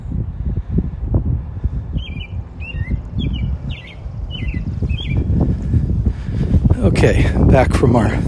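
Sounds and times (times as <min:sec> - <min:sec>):
low rumbling background: 0:00.0 - 0:08.2
bird chirping: 0:01.9 - 0:05.5
speech: 0:07.0 - 0:08.2.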